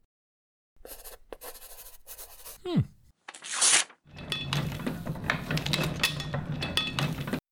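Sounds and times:
speech: 0:02.6 - 0:02.9
printing press clanking and grinding: 0:04.1 - 0:07.4.

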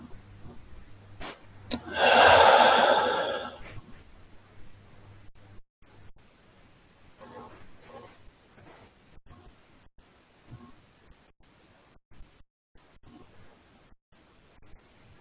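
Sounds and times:
slow deep breathing during a guided meditation: 0:01.7 - 0:03.8.

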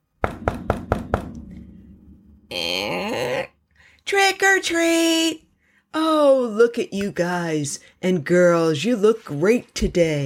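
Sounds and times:
sharp knocks on a door: 0:00.2 - 0:01.8
speech: 0:02.5 - 0:02.9, 0:04.1 - 0:05.4, 0:06.0 - 0:10.2.

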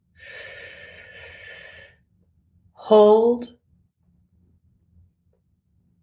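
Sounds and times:
long breath during a guided breathing exercise: 0:00.2 - 0:02.0
speech: 0:02.9 - 0:03.6.

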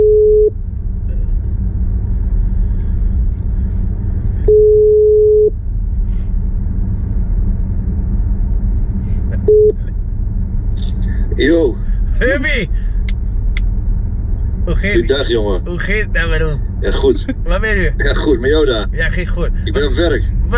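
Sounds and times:
outgoing telephone call ringback tone: 0:00.0 - 0:00.5, 0:04.5 - 0:05.5
low rumble: 0:00.0 - 0:20.5
speech: 0:14.8 - 0:20.4.

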